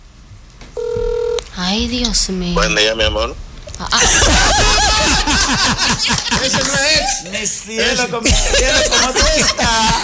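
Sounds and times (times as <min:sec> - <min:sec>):
quiet hum: 0:00.0 - 0:10.0
mobile phone dialing tone: 0:00.8 - 0:01.4
speech: 0:01.6 - 0:10.0
laughter: 0:03.9 - 0:07.4, 0:08.0 - 0:10.0.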